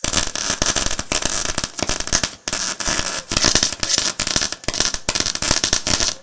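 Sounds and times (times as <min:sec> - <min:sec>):
electric welding: 0:00.0 - 0:06.2.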